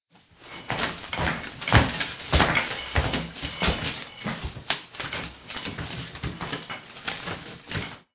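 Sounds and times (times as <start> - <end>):
footsteps: 0.2 - 8.1.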